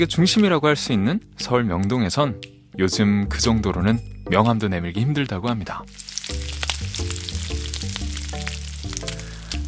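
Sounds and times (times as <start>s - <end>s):
speech: 0.0s - 6.1s
crabs deep-frying in hot oil at a street food stall in Seoul: 5.9s - 9.6s.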